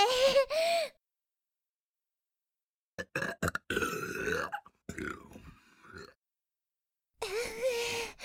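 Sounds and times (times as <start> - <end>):
breathy gasping: 0.2 - 1.0, 7.2 - 8.2
loud deep burps: 3.0 - 6.2.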